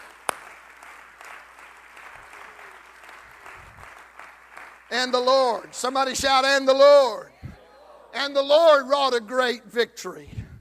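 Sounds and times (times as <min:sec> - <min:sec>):
church audience clapping hands: 0:00.0 - 0:06.4
speech: 0:04.9 - 0:07.3, 0:08.2 - 0:10.4.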